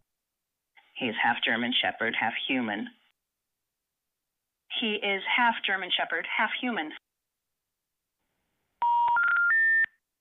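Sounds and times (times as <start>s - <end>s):
speech: 1.0s - 3.0s, 4.8s - 7.0s
electronic telephone keypad dialing tones: 8.8s - 10.0s.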